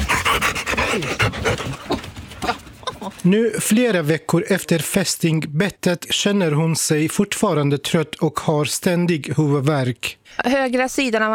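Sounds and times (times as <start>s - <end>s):
dog panting: 0.0s - 2.7s
speech: 1.0s - 1.9s, 3.2s - 11.3s.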